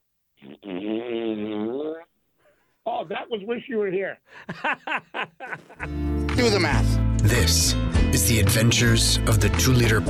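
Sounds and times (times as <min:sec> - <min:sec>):
long buzzy fart sound: 0:00.4 - 0:02.1
speech: 0:03.1 - 0:10.0
laughter: 0:04.4 - 0:06.0.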